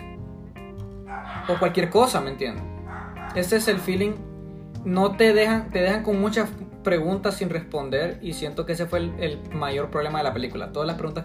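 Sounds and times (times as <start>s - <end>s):
dogs barking: 0.9s - 2.2s, 2.8s - 3.8s
speech: 1.1s - 2.7s, 3.4s - 11.2s.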